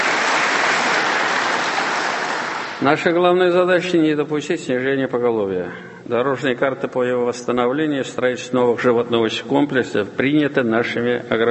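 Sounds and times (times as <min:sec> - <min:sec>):
audience applause at an official address on regional dairy farming: 0:00.0 - 0:02.8
speech: 0:02.8 - 0:11.4.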